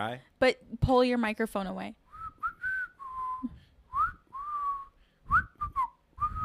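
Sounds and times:
speech: 0:00.0 - 0:02.0
person whistling a loud shrill tune: 0:02.1 - 0:06.4
short breaths: 0:03.4 - 0:03.9, 0:04.8 - 0:05.4.

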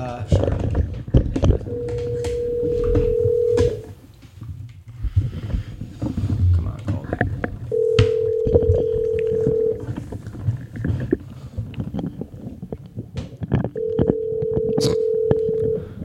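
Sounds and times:
room noise: 0:00.0 - 0:16.0
speech: 0:00.2 - 0:00.5
faint rustling: 0:00.2 - 0:15.9
long steady ringback tones of an unanswered phone call: 0:01.7 - 0:03.9, 0:07.7 - 0:09.9, 0:13.8 - 0:16.0.

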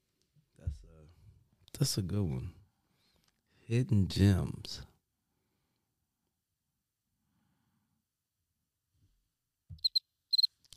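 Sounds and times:
speech: 0:01.8 - 0:02.6, 0:03.7 - 0:04.9
crickets chirping: 0:09.8 - 0:10.7.

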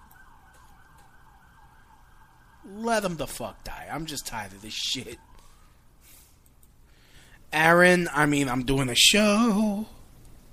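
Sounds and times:
emergency siren wailing outside in New York City: 0:00.0 - 0:06.0
traffic rumble: 0:00.0 - 0:08.9
speech: 0:02.6 - 0:05.3, 0:07.5 - 0:10.0.

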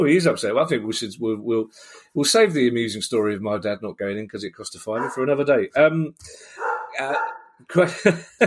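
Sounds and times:
speech: 0:00.0 - 0:08.4
dog barking at the postman: 0:05.0 - 0:05.3, 0:06.6 - 0:07.5
laughter: 0:07.0 - 0:08.4.

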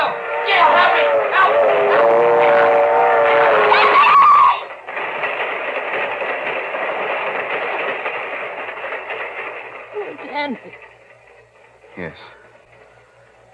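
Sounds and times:
train horn blaring: 0:00.0 - 0:04.6
train rolling along the track: 0:00.0 - 0:13.5.

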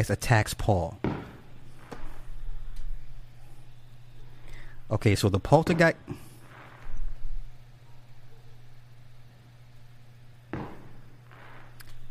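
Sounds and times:
speech: 0:00.0 - 0:01.1, 0:04.9 - 0:06.3
constant low electrical hum: 0:00.0 - 0:12.0
sharp firework bang outside: 0:01.0 - 0:02.4, 0:05.6 - 0:07.5, 0:10.5 - 0:11.8
low firework thump outside: 0:10.6 - 0:11.0.

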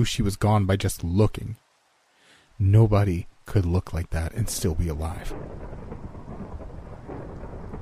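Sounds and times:
speech: 0:00.0 - 0:01.6, 0:02.6 - 0:06.0
steady dense rain pouring: 0:00.0 - 0:07.8
deep low rumble of thunder: 0:04.3 - 0:07.8.

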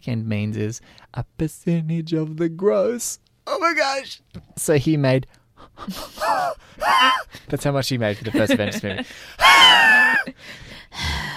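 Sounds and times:
speech: 0:00.0 - 0:11.3
person gasping: 0:06.2 - 0:07.5, 0:09.0 - 0:09.5, 0:10.3 - 0:11.3
heavy breathy exhalations: 0:10.4 - 0:11.3.

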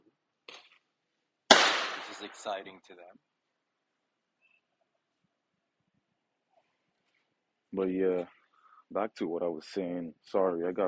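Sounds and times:
loud sharp firework bang in Brooklyn: 0:01.5 - 0:02.5
speech: 0:02.2 - 0:03.4, 0:07.8 - 0:10.8.

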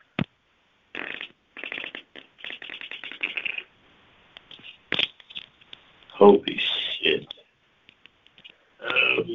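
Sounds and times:
long sputtering fart: 0:00.9 - 0:03.7
speech: 0:06.2 - 0:07.3.

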